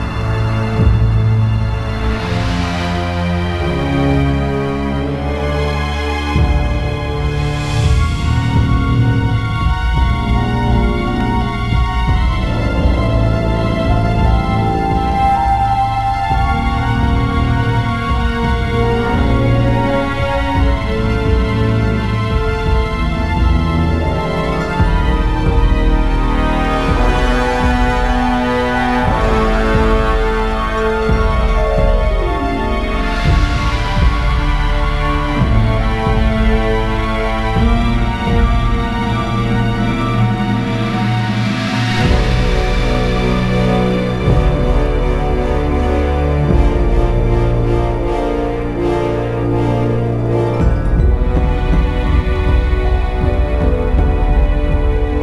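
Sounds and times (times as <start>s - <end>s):
low game music: 0.0s - 55.2s.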